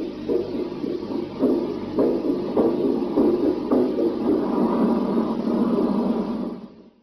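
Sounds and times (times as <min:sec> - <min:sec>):
heartbeat in a telemetry signal on tape: 0:00.0 - 0:06.9.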